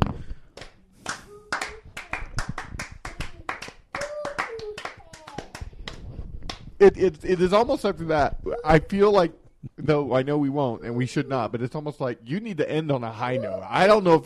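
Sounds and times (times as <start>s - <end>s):
few people golf clapping slowly: 0.0s - 6.8s
speech: 6.8s - 14.2s.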